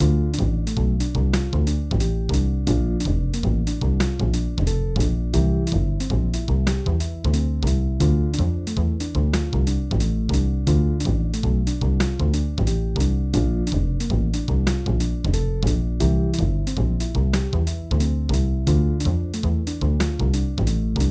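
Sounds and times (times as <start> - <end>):
3 vs. 2 backing music: 0.0 - 21.0.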